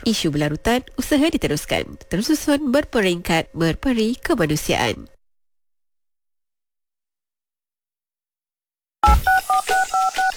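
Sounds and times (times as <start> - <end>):
speech: 0.0 - 5.1
telephone keypad dialing tones: 9.0 - 10.3.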